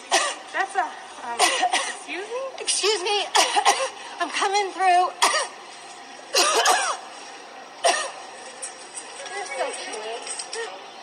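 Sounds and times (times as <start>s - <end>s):
woman giving harsh rasping coughs: 0.1s - 0.4s, 1.4s - 2.0s, 3.3s - 4.0s, 5.2s - 5.6s, 6.3s - 7.0s, 7.8s - 8.2s
speech: 2.7s - 5.3s.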